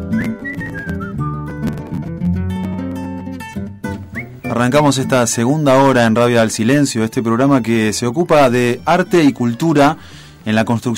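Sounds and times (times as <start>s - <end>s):
person whistling a wavering, gliding melody: 0.0s - 1.7s, 4.1s - 4.8s
full band accompaniment: 0.0s - 10.1s
speech: 4.5s - 10.9s.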